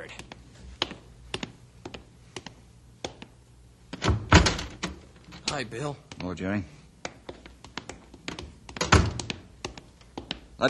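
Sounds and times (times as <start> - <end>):
door being opened with mechanical clicks and knocks: 3.9 - 5.6, 8.3 - 9.4
heavy door thud and rattle: 4.0 - 5.6, 8.8 - 9.3
speech: 5.5 - 6.8.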